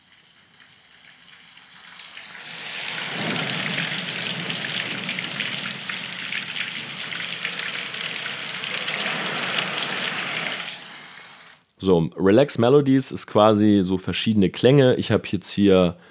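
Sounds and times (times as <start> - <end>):
bubbling water: 0.0 - 11.6
rain: 0.0 - 11.6
low rumble of thunder: 2.3 - 11.0
speech: 11.8 - 16.0.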